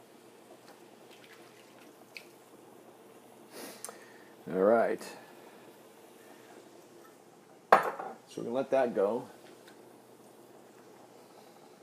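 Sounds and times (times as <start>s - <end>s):
soft kitchen hum: 0.0s - 11.8s
water scooped from a noodle pot and poured into a pan: 1.0s - 2.4s
speech: 4.5s - 5.2s, 8.4s - 9.4s.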